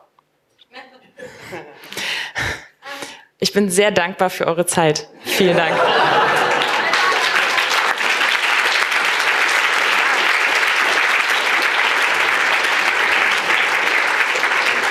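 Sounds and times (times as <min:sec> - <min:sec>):
laughter: 0:01.2 - 0:02.0, 0:05.2 - 0:08.7
speech: 0:01.5 - 0:01.9, 0:03.4 - 0:06.3
audience applause: 0:05.7 - 0:14.8.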